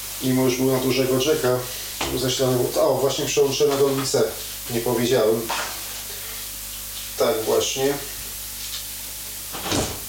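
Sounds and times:
speech: 0.2 - 5.7, 7.2 - 8.2
door thudding shut: 9.5 - 10.0
door creaking open: 9.6 - 10.0.

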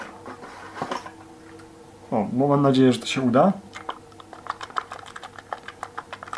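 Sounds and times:
speech: 2.1 - 3.8
milk sloshing inside a shaken small coffee capsule: 3.8 - 6.3.

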